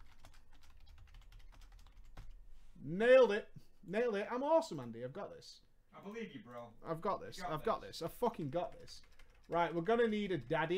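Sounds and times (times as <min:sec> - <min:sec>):
rapid typing on a wireless computer keyboard: 0:00.0 - 0:02.4, 0:08.4 - 0:10.2
speech: 0:02.8 - 0:10.7.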